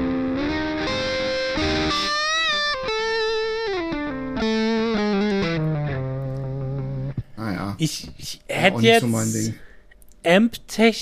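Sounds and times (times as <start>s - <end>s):
distorted electric guitar through a digital multi-effects unit playing a melodic line: 0.0s - 7.2s
speech: 7.8s - 9.6s, 10.2s - 11.0s.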